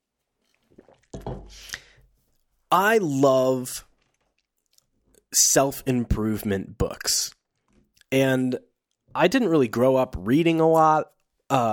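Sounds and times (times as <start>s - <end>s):
gulp and swallow: 0.4s - 2.0s, 3.8s - 5.3s, 7.3s - 8.1s
person drinking water: 0.4s - 2.2s, 3.8s - 5.3s, 7.3s - 8.1s
speech: 0.8s - 1.8s, 2.7s - 3.9s, 5.4s - 7.4s, 8.1s - 11.7s.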